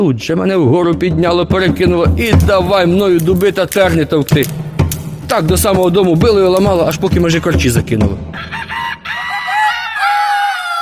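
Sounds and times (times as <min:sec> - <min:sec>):
speech: 0:00.0 - 0:04.6, 0:05.3 - 0:08.7
roosters crowing: 0:08.4 - 0:10.7.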